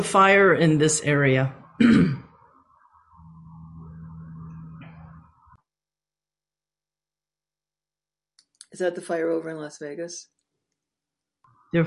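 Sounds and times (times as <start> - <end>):
speech: 0.0 - 2.2, 8.8 - 10.4
person clearing throat: 1.8 - 2.3.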